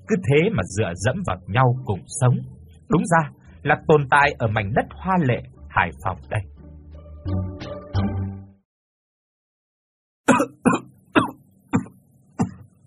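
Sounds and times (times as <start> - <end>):
speech: 0.1 - 6.5, 7.2 - 7.6
elderly man hacking cough in a slum: 10.3 - 12.7.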